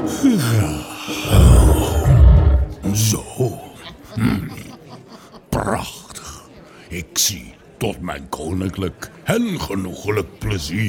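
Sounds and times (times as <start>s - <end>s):
speech: 0.0s - 2.1s, 7.3s - 10.8s
stretching lion yawning lazily: 0.4s - 2.9s
laughter: 1.3s - 5.9s.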